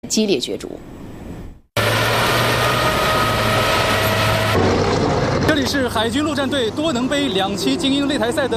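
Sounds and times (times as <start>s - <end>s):
speech: 0.0s - 1.0s, 5.6s - 8.5s
heavy armored vehicle engines roaring on a race track: 1.8s - 8.5s.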